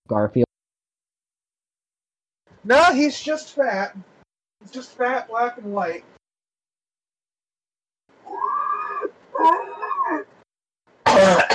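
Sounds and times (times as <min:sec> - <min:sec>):
speech: 0:00.1 - 0:00.4, 0:02.6 - 0:06.2, 0:09.4 - 0:10.2
raspy throat clearing: 0:11.0 - 0:11.5
person coughing: 0:11.1 - 0:11.5.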